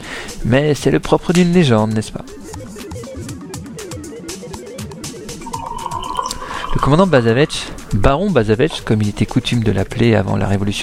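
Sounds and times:
speech: 0.4 - 2.4, 6.8 - 10.8
tea pouring into a cup: 5.4 - 8.2.

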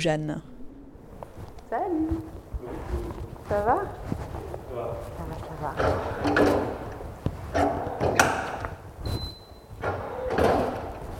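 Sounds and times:
speech: 0.0 - 0.5, 3.5 - 4.2, 4.8 - 6.8
door rubbing and knocking: 5.6 - 11.1
brief thin door squeak: 7.6 - 11.0.

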